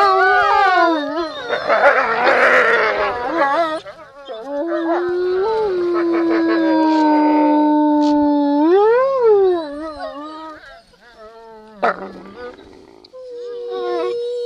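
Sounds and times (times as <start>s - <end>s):
wolf howling: 0.0s - 14.4s
wolf snarling: 1.3s - 4.8s, 10.6s - 13.1s.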